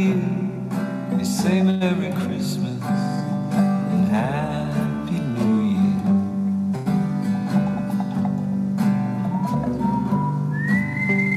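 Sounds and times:
full musical backing with instrumental chords: 0:00.0 - 0:11.3
speech: 0:01.4 - 0:03.2
whistled melody in a song: 0:09.2 - 0:11.3.

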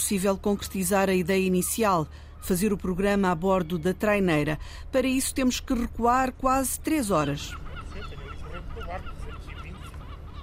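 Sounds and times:
low rumbling background: 0:00.0 - 0:10.4
seagulls squawking at a fishing harbour: 0:00.1 - 0:04.6, 0:06.9 - 0:10.4
speech: 0:00.1 - 0:07.6.

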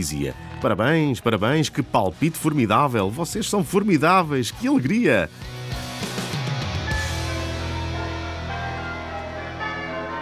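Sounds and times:
speech: 0:00.0 - 0:05.8
several bells ringing in a clanging peal: 0:06.9 - 0:10.1.

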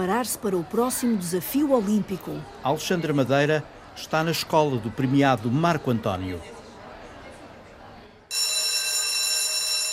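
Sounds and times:
speech: 0:00.0 - 0:06.6
school dismissal bell ringing at a private secondary school in Ribadava: 0:08.3 - 0:09.9.

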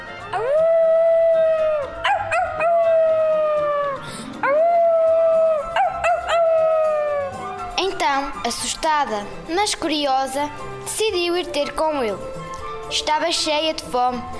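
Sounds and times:
wolf howling loudly with yipping breaks: 0:00.3 - 0:08.7
speech: 0:08.5 - 0:14.3.

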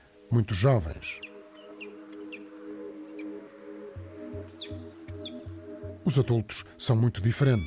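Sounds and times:
speech: 0:00.3 - 0:01.3, 0:06.1 - 0:07.6
peregrine falcon chicks chirping at sea cliff nest: 0:01.2 - 0:03.5, 0:04.5 - 0:05.6.

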